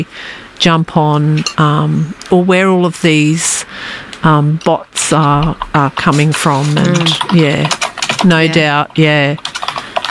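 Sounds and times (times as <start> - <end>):
speech: 0.0 - 9.5
typing on a computer keyboard: 5.4 - 10.0
drawn-out voiced sounds: 6.4 - 9.1.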